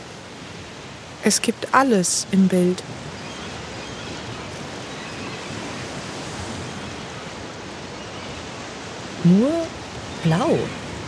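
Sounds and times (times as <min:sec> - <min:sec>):
ocean surf rolling: 0:00.0 - 0:11.0
speech: 0:01.2 - 0:03.2, 0:09.3 - 0:10.8.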